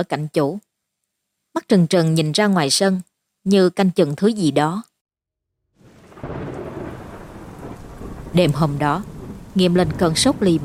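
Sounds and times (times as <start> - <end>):
speech: 0.0 - 0.7, 1.6 - 4.9, 8.4 - 10.6
heavy rain pouring down outside at night: 5.8 - 10.6.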